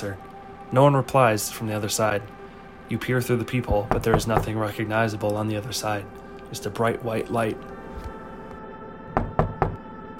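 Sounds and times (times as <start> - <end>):
speech: 0.0 - 7.7
low steady hum: 0.0 - 10.1
firm knocking on a door: 3.8 - 4.5, 9.2 - 9.8.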